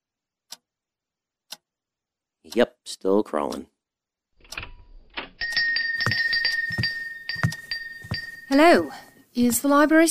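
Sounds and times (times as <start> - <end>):
clock ticking: 2.5 - 3.7, 5.4 - 10.1
speech: 2.5 - 3.7, 8.5 - 10.1.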